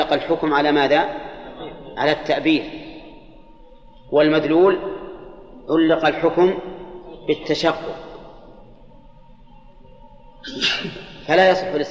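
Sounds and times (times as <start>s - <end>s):
faint low hum: 0.0s - 11.9s
speech: 0.1s - 2.8s, 4.1s - 5.0s, 5.7s - 8.1s, 10.4s - 11.9s
person sneezing: 10.5s - 11.0s.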